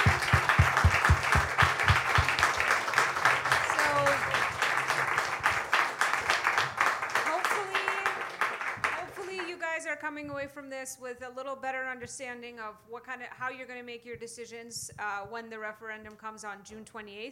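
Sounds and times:
room full of people applauding: 0:00.0 - 0:09.5
speech: 0:10.5 - 0:17.2.

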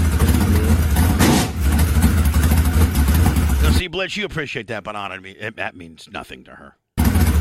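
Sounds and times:
open-wheel modified race car engine with four-barrel carburetor rumbling: 0:00.0 - 0:03.8, 0:07.0 - 0:07.3
speech: 0:04.0 - 0:06.8.

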